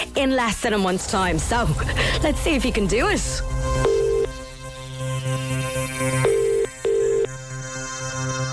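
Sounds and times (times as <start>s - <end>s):
sustained musical bed: 0.0s - 8.5s
speech: 0.2s - 4.0s
telephone ringing with a bright electronic tone: 3.8s - 4.3s, 6.2s - 7.3s.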